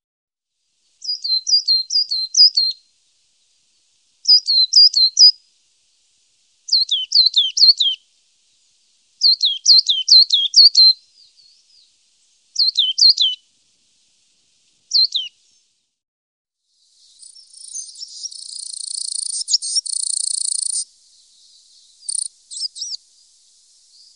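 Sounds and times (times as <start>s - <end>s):
coal tit song: 0.9s - 2.9s, 3.7s - 5.5s, 6.7s - 13.4s, 14.7s - 15.7s, 16.7s - 24.1s.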